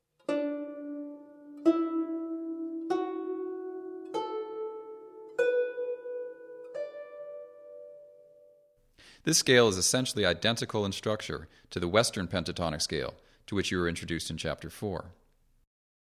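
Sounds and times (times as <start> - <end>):
plucked notes on a 21-string zheng in pentatonic D E F sharp A B tuning: 0.2 - 8.6
speech: 9.2 - 15.2.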